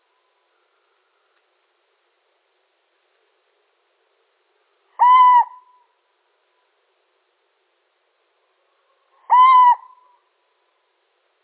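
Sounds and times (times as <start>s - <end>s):
male little owl giving flat hoots: 5.0s - 5.9s, 8.7s - 10.3s.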